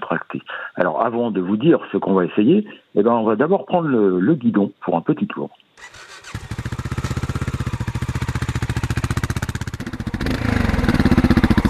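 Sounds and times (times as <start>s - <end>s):
speech: 0.3s - 6.0s
big single-cylinder motorcycle engine running: 5.8s - 11.6s.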